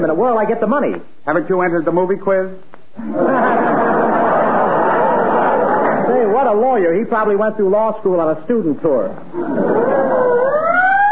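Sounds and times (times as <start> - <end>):
speech: 0.0 - 3.8, 6.1 - 9.8
laughter: 3.0 - 6.4, 9.3 - 10.6
ambulance siren wailing: 9.8 - 11.0.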